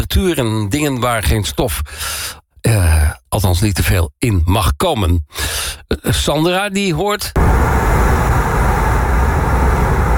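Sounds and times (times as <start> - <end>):
speech: 0.2 - 8.2
wind and road noise from a car on a French motorway with window slightly open: 7.4 - 10.1.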